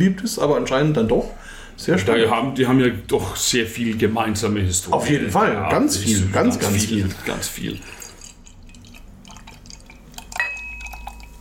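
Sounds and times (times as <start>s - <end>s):
speech: 0.0s - 8.0s
cool drink being poured: 6.0s - 11.3s.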